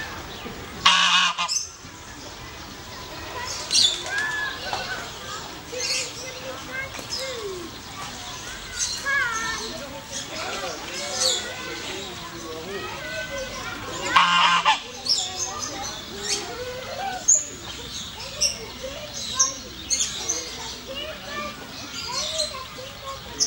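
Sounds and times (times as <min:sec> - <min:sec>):
busy background noise: 0:00.0 - 0:23.4
goose honking on Lützowstraße in Solingen: 0:00.8 - 0:01.6, 0:14.0 - 0:14.9.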